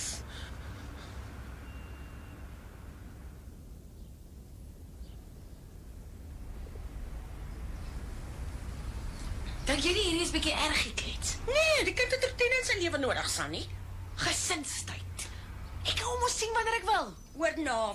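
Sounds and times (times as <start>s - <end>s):
heavy bus engine rumbling as it pulls up: 0.0s - 5.0s, 5.6s - 17.9s
faint high beeping: 1.5s - 3.1s
speech: 9.7s - 15.0s, 16.1s - 17.9s.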